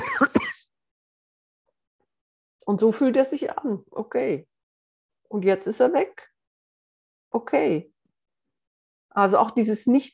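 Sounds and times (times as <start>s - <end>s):
person clearing throat from a cough urge: 0.0s - 0.7s
speech: 2.7s - 4.5s, 5.3s - 6.3s, 7.3s - 7.9s, 9.1s - 10.1s.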